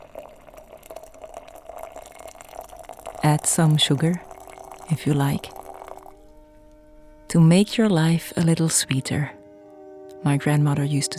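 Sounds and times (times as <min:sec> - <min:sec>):
water pouring into two cups for tea: 0:00.0 - 0:06.3
speech: 0:03.2 - 0:04.3, 0:04.9 - 0:05.6, 0:07.3 - 0:09.4, 0:10.2 - 0:11.1.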